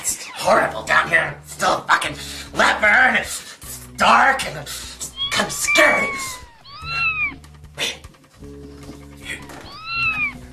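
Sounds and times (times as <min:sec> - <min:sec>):
speech: 0:00.4 - 0:02.2, 0:04.0 - 0:04.8, 0:05.4 - 0:06.3
kitten meowing: 0:05.1 - 0:07.4, 0:09.4 - 0:10.5
short squeak: 0:09.4 - 0:10.4.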